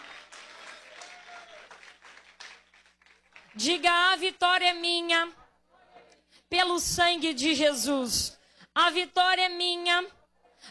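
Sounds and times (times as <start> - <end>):
congregation clapping hands in applause: 0.0 - 3.7
speech: 3.6 - 5.4, 6.5 - 10.2.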